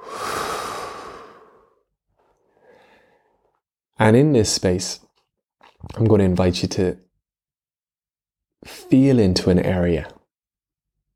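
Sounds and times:
deep breath in and out during a guided grounding exercise: 0.0 - 1.9, 2.5 - 3.4
speech: 4.0 - 5.0, 5.8 - 7.1, 8.6 - 10.2.

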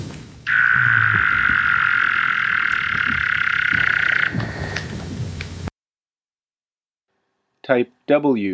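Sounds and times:
Weddell seal calls lowered to a quarter frequency in McMurdo Sound, Antarctica: 0.5 - 4.8
speech: 7.7 - 8.5.

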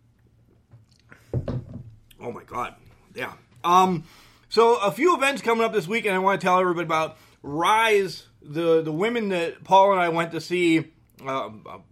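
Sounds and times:
person sipping a drink: 0.2 - 1.2
speech: 2.2 - 11.9.

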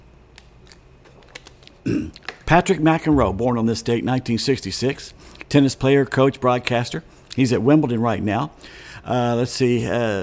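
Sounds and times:
speech: 1.8 - 10.2
person sipping a drink: 1.9 - 2.3.

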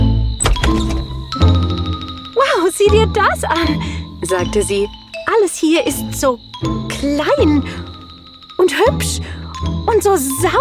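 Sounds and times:
door of a small house creaking: 0.2 - 1.6
door latch click of a small house: 0.4 - 1.2
door thump as it swings: 0.4 - 1.3
speech: 2.8 - 7.9, 8.6 - 10.5.

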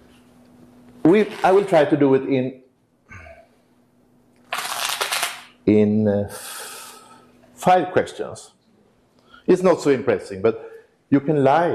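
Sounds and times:
speech: 1.0 - 2.6, 5.6 - 6.5, 7.6 - 8.6, 9.5 - 11.7
deck of playing cards being riffle-shuffled: 4.4 - 5.5.

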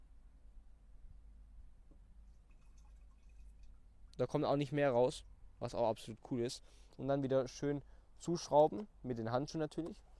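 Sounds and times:
faint dripping: 1.9 - 4.3
liquid poured through a strainer into a sprayer: 2.2 - 4.2
speech: 4.2 - 10.1.

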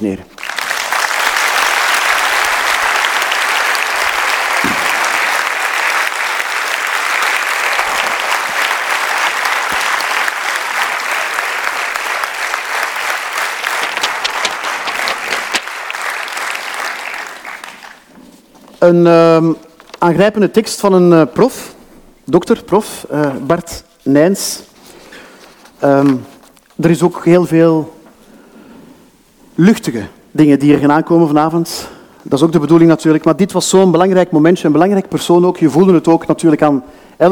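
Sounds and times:
speech: 0.0 - 0.3, 18.8 - 24.7, 25.8 - 28.0, 29.6 - 37.3
large audience applauding: 0.4 - 18.1.

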